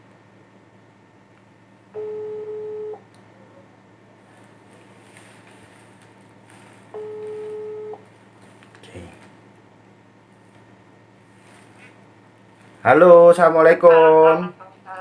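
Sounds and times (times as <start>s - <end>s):
low hum: 0.0s - 14.9s
telephone ringback tone while placing call: 2.0s - 3.0s, 7.0s - 8.0s
speech: 12.8s - 14.6s.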